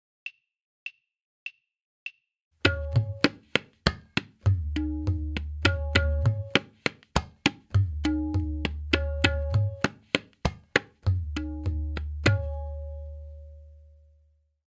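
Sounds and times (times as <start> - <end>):
tabla playing a tihai: 2.6 - 13.6.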